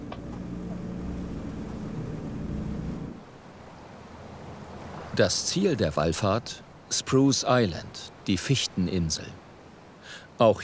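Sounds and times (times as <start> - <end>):
motorboat engine drone at sea: 0.0 - 3.3
wind at sea: 0.0 - 10.6
speech: 5.2 - 9.4, 10.4 - 10.6.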